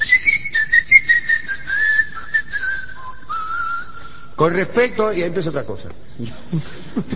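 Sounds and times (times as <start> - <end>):
melodic whistling: 0.0 - 4.4
speech: 4.4 - 7.1.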